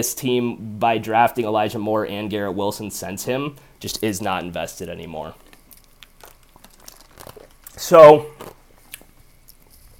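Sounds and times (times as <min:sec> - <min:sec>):
speech: 0:00.0 - 0:05.4, 0:07.8 - 0:08.6
person crunching ice: 0:06.2 - 0:08.6.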